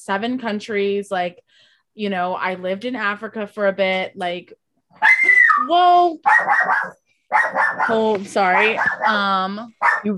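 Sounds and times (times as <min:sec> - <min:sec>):
speech: 0:00.0 - 0:10.1
dog yelping and howling behind a door: 0:05.0 - 0:09.2, 0:09.8 - 0:10.1.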